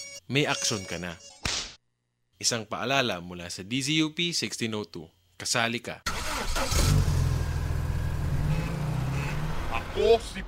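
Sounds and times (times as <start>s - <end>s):
speech: 0.3s - 1.3s, 2.4s - 7.1s, 10.0s - 10.4s
car engine revving: 6.1s - 10.3s.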